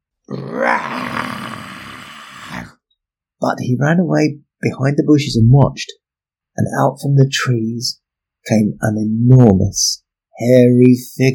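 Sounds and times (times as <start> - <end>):
deep growling monster roar: 0.3 - 2.8
speech: 3.4 - 6.0, 6.6 - 11.3.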